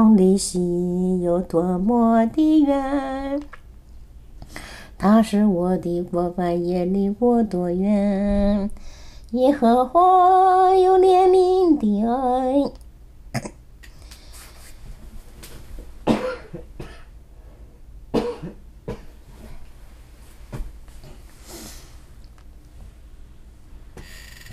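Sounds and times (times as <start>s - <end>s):
speech: 0.2s - 3.6s, 4.5s - 12.8s
quiet breathing: 4.4s - 5.0s, 8.8s - 9.3s, 21.0s - 22.2s
person coughing harshly: 16.0s - 17.1s, 18.1s - 19.1s.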